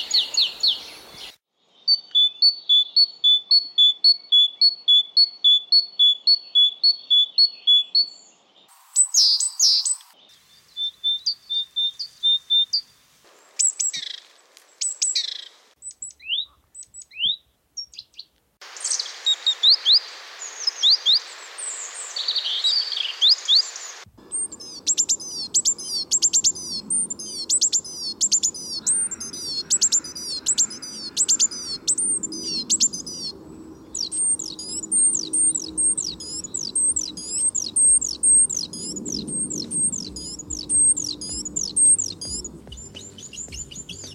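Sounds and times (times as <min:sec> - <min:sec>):
great tit song: 0:00.0 - 0:44.1
faint hissy background: 0:08.6 - 0:15.8, 0:18.4 - 0:44.1.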